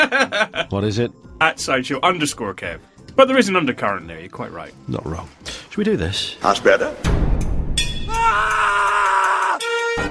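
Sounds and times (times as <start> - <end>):
laughter: 0.0 - 0.7
speech: 0.1 - 7.2
loud sustained scream: 8.1 - 9.6.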